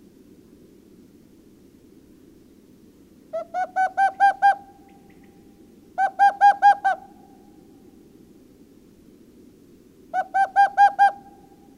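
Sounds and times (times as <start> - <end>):
owl hooting: 3.3 - 7.6, 10.1 - 11.7.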